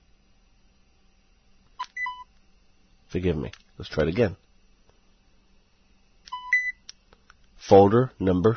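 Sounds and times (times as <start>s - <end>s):
speech: 3.1s - 4.4s, 7.7s - 8.5s
two-tone electronic confirmation beep from a device: 6.3s - 6.8s.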